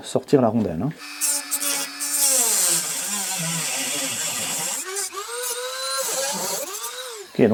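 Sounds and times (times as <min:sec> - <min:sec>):
speech: 0:00.0 - 0:01.3, 0:07.4 - 0:07.5
high-speed rotary tool grinding down a metal rivet stem: 0:01.0 - 0:07.5.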